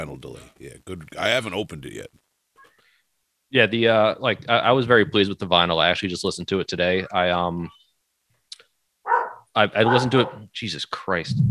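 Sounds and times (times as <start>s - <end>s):
speech: 0.0s - 2.2s, 3.5s - 7.8s, 9.6s - 11.5s
dog barking: 9.1s - 10.4s.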